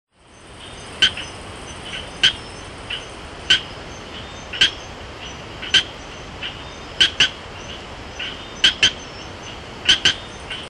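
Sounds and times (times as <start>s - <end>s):
Gephyromantis leucomaculatus: 0.3s - 10.6s.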